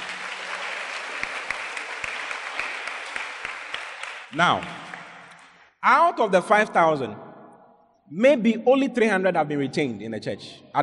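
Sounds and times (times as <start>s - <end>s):
church audience clapping: 0.0s - 5.7s
speech: 4.3s - 4.8s, 5.8s - 7.2s, 8.1s - 10.8s.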